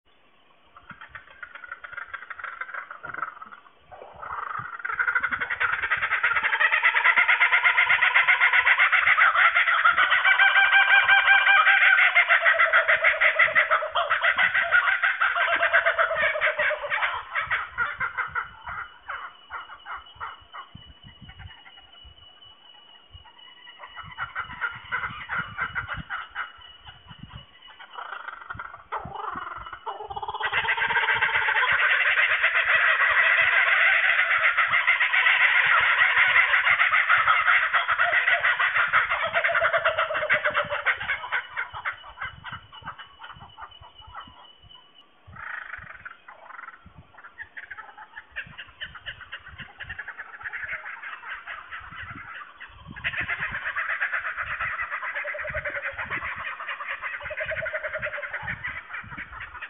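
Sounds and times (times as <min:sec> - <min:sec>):
kookaburras calling: 0:00.5 - 0:59.6.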